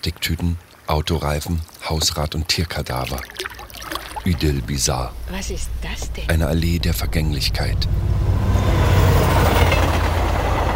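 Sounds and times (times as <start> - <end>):
speech: 0.0 - 3.5, 4.2 - 8.2
train on the Neisse valley railway crossing the river between Zittau and Görlitz: 4.3 - 10.7.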